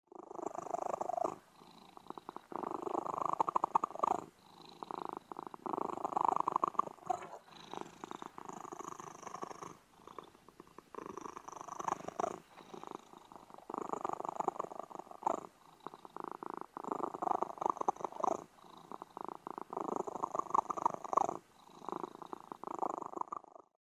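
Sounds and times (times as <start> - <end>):
purring with squeaks of pleasure: 0.3 - 23.1.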